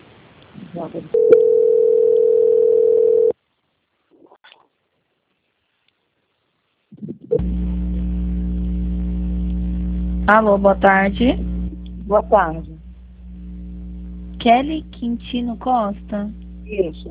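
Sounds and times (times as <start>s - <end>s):
speech: 0.7s - 1.6s, 10.3s - 11.4s, 12.1s - 12.8s, 14.4s - 17.0s
telephone line tone during a call transfer: 1.2s - 3.3s
loud low hum: 7.3s - 17.0s.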